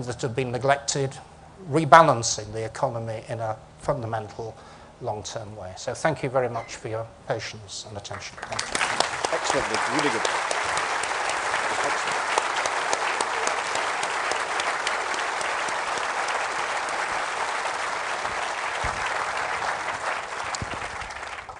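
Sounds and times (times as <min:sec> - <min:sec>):
speech: 0:00.0 - 0:10.4
audience applauding a speaker: 0:08.2 - 0:21.5.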